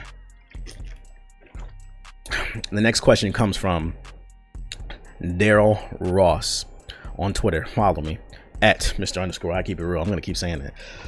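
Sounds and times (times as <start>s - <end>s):
person taking a swig of water with wet gulping swallows: 0.5s - 2.7s
speech: 2.6s - 4.1s, 5.2s - 11.0s.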